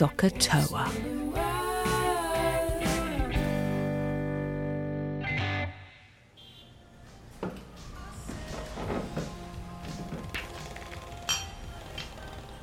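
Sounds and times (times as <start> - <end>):
speech: 0.0 - 1.1
old-fashioned song through a tinny distorted radio in a dingy smoky city bar: 0.4 - 12.6
clinks and clatter of glasses and dishes: 11.2 - 11.7.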